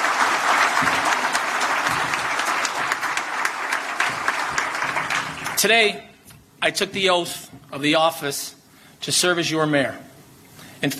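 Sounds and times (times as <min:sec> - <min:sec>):
sizable crowd applauding in Buffalo: 0:00.0 - 0:05.7
speech: 0:05.6 - 0:10.1, 0:10.8 - 0:10.9.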